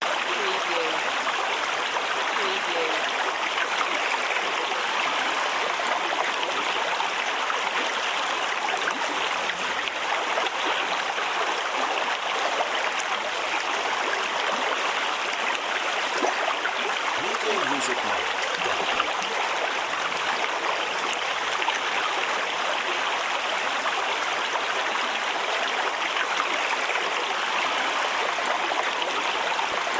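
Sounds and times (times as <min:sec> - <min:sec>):
high brook flowing: 0:00.0 - 0:29.9.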